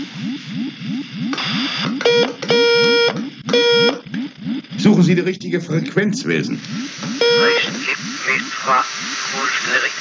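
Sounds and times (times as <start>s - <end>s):
steady pulsing low warble: 0.0s - 5.1s, 5.8s - 9.6s
speech: 0.2s - 3.4s, 4.8s - 9.9s
electronic beeping as a radio signal from aliens: 0.2s - 4.6s, 6.7s - 9.3s
short noisy hiss: 6.2s - 9.9s.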